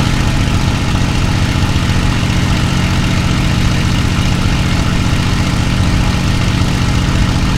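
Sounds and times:
Mustang aircraft engines heard in the cockpit: 0.0s - 7.5s.

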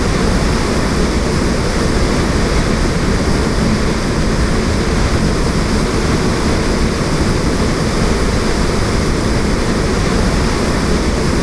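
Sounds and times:
P-51D plane wind noise: 0.0s - 11.4s.

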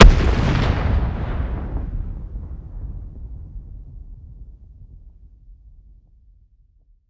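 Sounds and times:
distant grenade explosion: 0.0s - 3.5s.

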